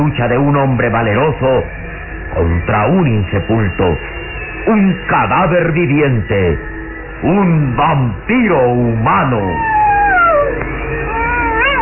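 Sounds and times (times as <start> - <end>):
speech: 0.0 - 9.7
wolf howling: 9.1 - 11.8.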